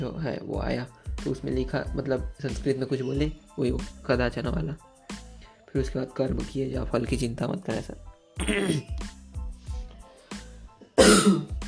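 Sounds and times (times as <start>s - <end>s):
speech: 0.0s - 4.9s, 5.7s - 9.2s, 11.2s - 11.5s
rough coughs from an irritated scratchy throat: 8.4s - 9.0s, 11.0s - 11.5s
throat clearing from an irritated scratchy throat: 8.4s - 9.0s, 11.0s - 11.5s.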